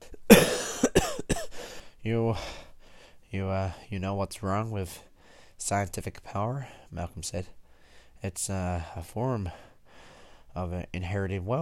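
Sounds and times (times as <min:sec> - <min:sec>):
man coughing harshly: 0:00.1 - 0:01.7
speech: 0:02.0 - 0:02.6, 0:03.3 - 0:07.6, 0:08.2 - 0:09.7, 0:10.6 - 0:11.6.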